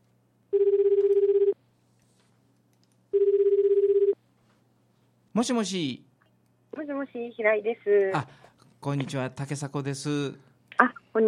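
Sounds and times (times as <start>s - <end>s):
telephone ringback tone while a call is placed: 0.6s - 1.6s, 3.2s - 4.2s
speech: 5.4s - 6.1s, 6.7s - 11.2s.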